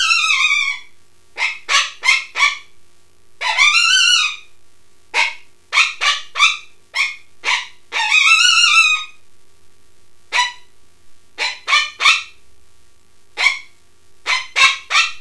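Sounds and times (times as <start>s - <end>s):
coyote yipping: 0.0s - 2.7s, 3.4s - 4.5s, 5.2s - 9.2s, 10.3s - 10.7s, 11.4s - 12.4s, 13.4s - 13.7s, 14.3s - 15.1s.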